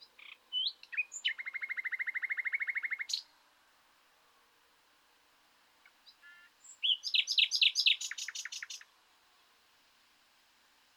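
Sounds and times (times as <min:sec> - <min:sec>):
common nightingale Luscinia megarhynchos singing: 0:00.0 - 0:03.3, 0:05.8 - 0:08.9.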